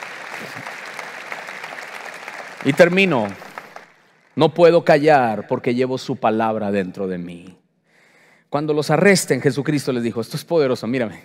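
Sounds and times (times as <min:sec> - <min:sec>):
applause during a Christian sermon: 0:00.0 - 0:05.0
speech: 0:00.4 - 0:00.9, 0:02.6 - 0:03.4, 0:04.4 - 0:07.6, 0:08.5 - 0:11.2.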